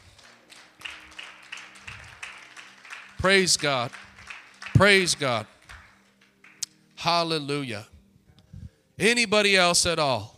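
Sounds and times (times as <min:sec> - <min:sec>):
crowd applauding: 0:00.0 - 0:07.0
speech: 0:03.2 - 0:04.1, 0:04.8 - 0:05.5, 0:07.0 - 0:07.9, 0:09.0 - 0:10.3.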